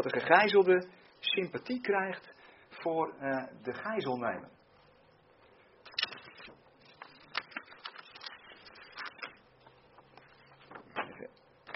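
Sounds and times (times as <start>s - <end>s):
speech: 0.0s - 4.6s
paper being shuffled and tapped into order: 5.8s - 11.7s.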